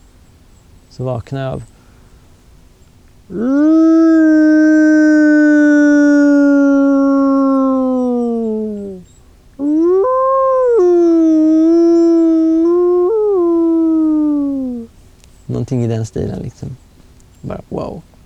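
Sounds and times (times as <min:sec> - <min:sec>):
speech: 0:01.0 - 0:01.8, 0:03.3 - 0:04.0, 0:15.9 - 0:16.8, 0:17.4 - 0:18.1
wolves howling shortly after dawn before sunrise: 0:03.3 - 0:14.9.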